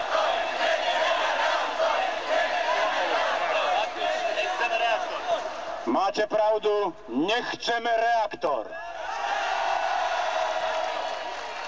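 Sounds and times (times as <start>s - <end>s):
large crowd at a demonstration against a reactor shouting and roaring: 0.0s - 5.9s, 8.8s - 11.6s
speech: 5.9s - 8.9s.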